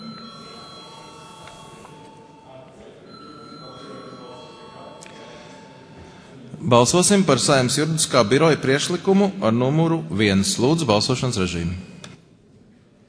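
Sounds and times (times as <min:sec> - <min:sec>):
electronic bell ringing in a parliament chamber to call a vote: 0:00.0 - 0:06.4
speech: 0:06.6 - 0:11.9.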